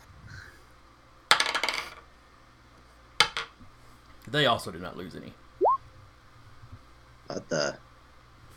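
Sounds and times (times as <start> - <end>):
dice rolled for a saving throw in a tabletop role-playing game: 1.3 - 2.1, 3.2 - 3.5
speech: 4.3 - 5.4, 7.3 - 7.9.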